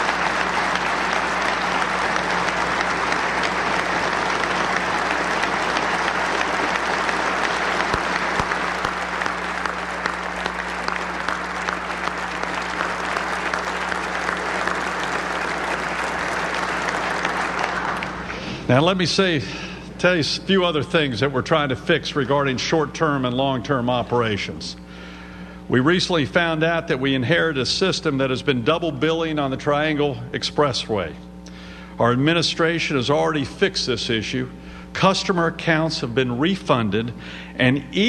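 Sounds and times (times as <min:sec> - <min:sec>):
applause from a large audience: 0:00.0 - 0:18.8
speech: 0:18.7 - 0:24.8, 0:25.7 - 0:31.3, 0:32.0 - 0:38.0.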